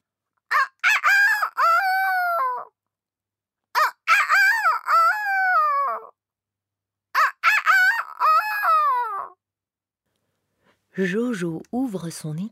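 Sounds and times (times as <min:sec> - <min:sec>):
rooster crowing: 0:00.5 - 0:02.7, 0:03.8 - 0:06.1, 0:07.2 - 0:09.3
speech: 0:11.0 - 0:12.5.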